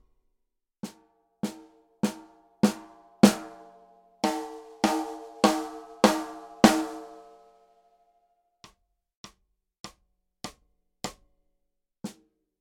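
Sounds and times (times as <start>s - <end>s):
snare drum played with hickory sticks: 1.5s - 3.6s, 4.3s - 7.3s.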